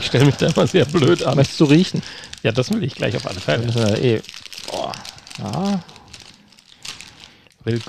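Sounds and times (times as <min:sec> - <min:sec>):
plastic snack bag crinkling and rustling while being opened: 0:00.0 - 0:07.8
speech: 0:00.1 - 0:05.9, 0:07.6 - 0:07.8
person exclaiming: 0:04.7 - 0:05.9.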